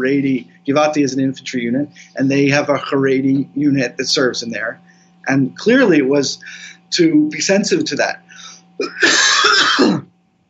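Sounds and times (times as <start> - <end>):
speech: 0.0 - 10.1
man clearing throat: 8.8 - 10.1
man coughing: 8.8 - 10.1.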